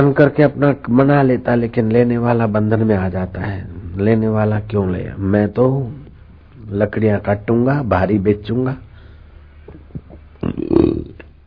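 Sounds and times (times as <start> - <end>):
speech: 0.0 - 6.0, 6.7 - 8.8
soft mouth sounds: 9.6 - 11.4
person burping: 9.7 - 11.4.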